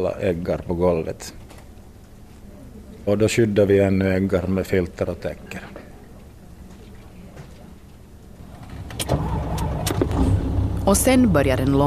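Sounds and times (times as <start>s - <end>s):
speech: 0.0s - 1.4s, 3.1s - 5.8s, 10.9s - 11.8s
road noise: 8.4s - 11.8s
truck engine rumbling while driving slowly on road: 8.4s - 11.8s.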